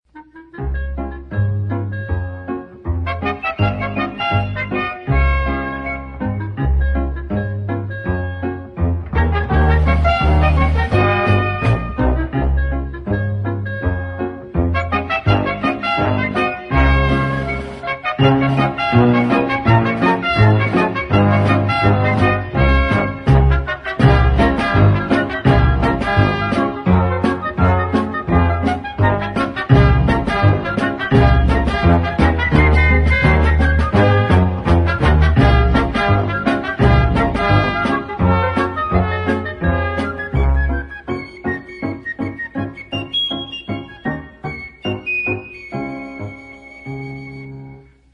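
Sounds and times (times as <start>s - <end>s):
cartoon musical curtain: 0.1s - 48.1s.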